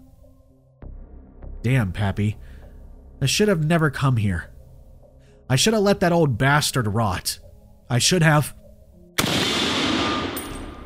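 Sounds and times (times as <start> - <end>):
speech: 1.6 - 2.6, 3.2 - 4.5, 5.5 - 8.6
gunshot fired near a line of oak trees: 9.2 - 10.8.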